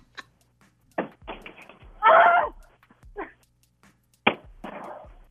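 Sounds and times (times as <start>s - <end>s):
beating on the backside of a knocked-over television set: 1.0s - 1.9s, 4.2s - 5.0s.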